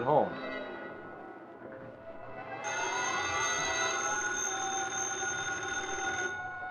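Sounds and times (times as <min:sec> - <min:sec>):
telephone bell ringing: 0:02.6 - 0:06.6.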